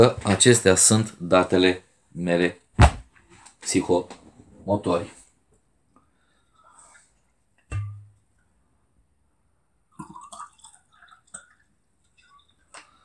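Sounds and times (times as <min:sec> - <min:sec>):
speech: 0:00.0 - 0:02.6, 0:03.6 - 0:05.2
heavy thud: 0:02.8 - 0:03.1
wine and mineral water poured into a glass at a festival: 0:09.9 - 0:13.0.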